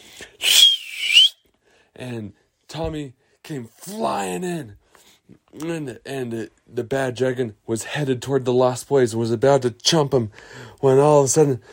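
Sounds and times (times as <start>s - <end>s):
person whistling: 0.4s - 1.4s
speech: 2.0s - 11.7s.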